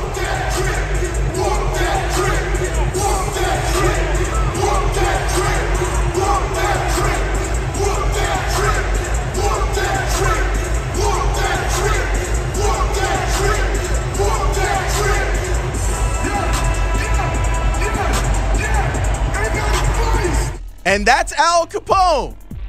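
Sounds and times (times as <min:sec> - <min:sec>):
dense arena crowd chanting at opponents: 0:00.0 - 0:20.6
speech: 0:21.0 - 0:22.4.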